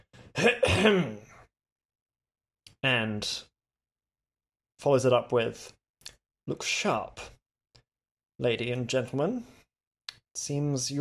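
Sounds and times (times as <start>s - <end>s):
speech: 0.4s - 1.2s, 2.8s - 3.5s, 4.8s - 5.8s, 6.4s - 7.4s, 8.4s - 9.6s, 10.4s - 11.0s
man clearing his throat: 0.4s - 1.3s.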